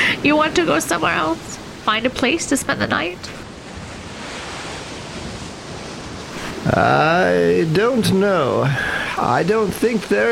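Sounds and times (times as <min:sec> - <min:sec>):
ocean surf washing onto the shore: 0:00.0 - 0:10.3
speech: 0:00.2 - 0:03.4, 0:06.6 - 0:10.3.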